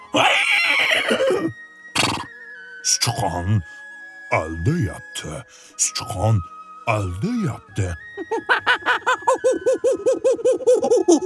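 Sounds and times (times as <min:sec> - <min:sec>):
horse neighing: 0:00.1 - 0:02.3
speech: 0:03.0 - 0:11.2
laughter: 0:08.2 - 0:11.2.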